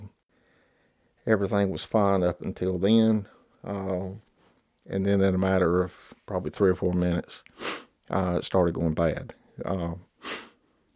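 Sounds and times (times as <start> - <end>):
speech: 1.2 - 10.4
breathy sniffle: 7.5 - 8.0, 10.2 - 10.6.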